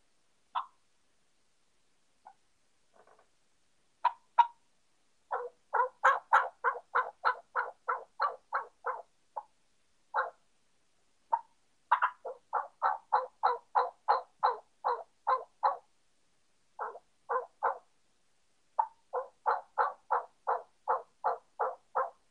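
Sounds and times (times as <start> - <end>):
young male turkey yelps made on a turkey call: 0.5 - 0.8, 4.0 - 4.6, 5.3 - 9.5, 10.2 - 10.4, 11.3 - 15.9, 16.8 - 17.9, 18.8 - 22.2.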